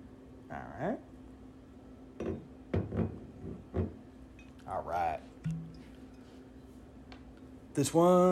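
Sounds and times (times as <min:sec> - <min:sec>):
speech: 0:00.5 - 0:01.2, 0:04.7 - 0:05.3, 0:07.8 - 0:08.3
glass bottles and a shot glass clinking: 0:05.4 - 0:06.3.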